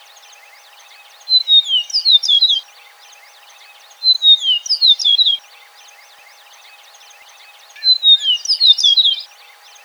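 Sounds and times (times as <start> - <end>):
Eastern meadowlark whistled song: 0.0 - 9.8.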